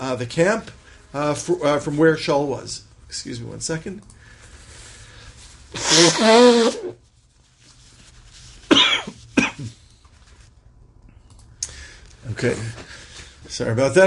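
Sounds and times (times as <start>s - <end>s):
speech: 0.1s - 4.2s, 5.7s - 7.0s, 12.3s - 12.9s, 13.5s - 14.0s
loud honking nose blow: 5.7s - 7.0s
short sharp snorts: 5.8s - 7.0s.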